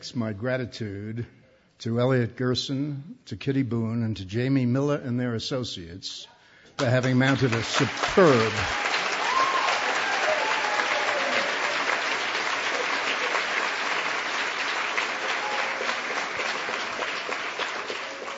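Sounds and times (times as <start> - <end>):
speech: 0.0 - 8.8
audience applause: 6.8 - 18.3.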